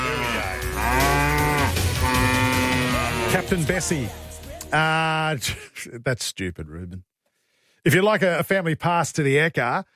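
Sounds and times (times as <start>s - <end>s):
cow mooing: 0.0s - 3.5s
speech: 3.3s - 7.1s, 7.8s - 9.9s.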